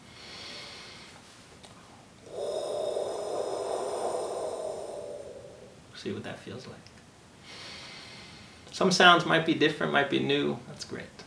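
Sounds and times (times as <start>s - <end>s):
person making a breathy hoh sound from the back of the throat: 2.3s - 5.8s
speech: 6.0s - 7.0s, 8.8s - 11.2s.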